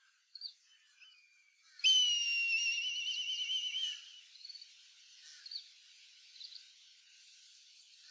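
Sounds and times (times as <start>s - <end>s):
black kite giving a whistled call: 1.8s - 4.0s.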